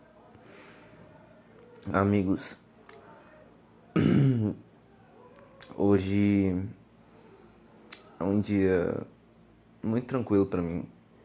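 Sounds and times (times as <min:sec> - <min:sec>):
speech: 0:01.8 - 0:02.6, 0:05.8 - 0:06.8, 0:08.2 - 0:09.1, 0:09.8 - 0:10.9
throat-clearing cough: 0:04.0 - 0:04.6.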